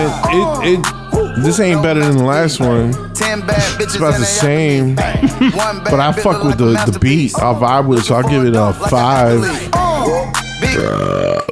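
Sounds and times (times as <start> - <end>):
long loud croaking burp: 0.0 - 1.9, 2.6 - 7.1, 9.5 - 11.5
speech: 0.0 - 11.4
laughter: 0.0 - 11.5.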